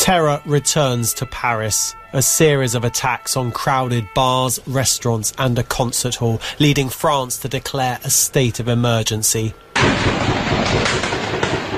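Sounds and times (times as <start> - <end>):
dense constant roar of street noise: 0.0 - 10.2
speech: 0.0 - 11.6
gunfire crackling: 9.7 - 11.7.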